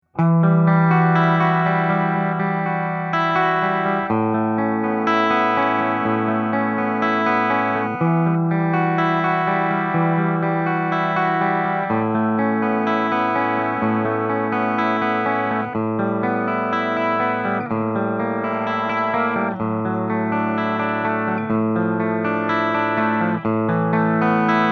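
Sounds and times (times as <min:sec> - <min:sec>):
clean guitar bridge pickup: 0:00.0 - 0:24.7.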